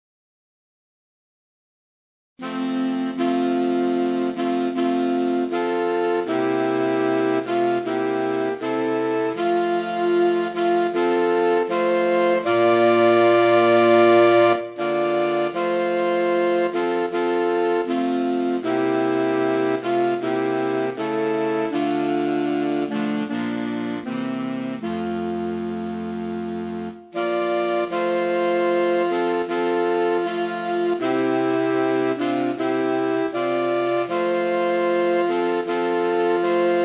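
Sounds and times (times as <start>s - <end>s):
saxophone: 2.4s - 36.8s.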